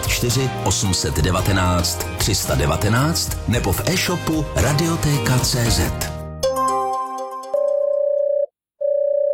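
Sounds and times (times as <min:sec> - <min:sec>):
speech: 0:00.2 - 0:06.1
brief jumble of phone line tones: 0:07.6 - 0:09.3.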